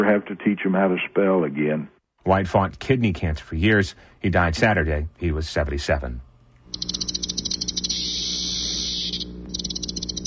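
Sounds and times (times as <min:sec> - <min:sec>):
speech: 0:00.0 - 0:07.1
cicadas buzzing with a rapid pulsing whir: 0:06.7 - 0:10.2.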